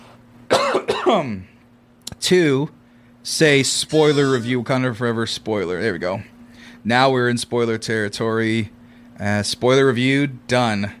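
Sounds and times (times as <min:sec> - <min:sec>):
faint steady hum: 0:00.0 - 0:10.9
loud cough: 0:00.5 - 0:01.3, 0:03.9 - 0:04.6
rough throat-clearing: 0:00.5 - 0:01.3
speech: 0:01.1 - 0:01.5, 0:02.2 - 0:10.9.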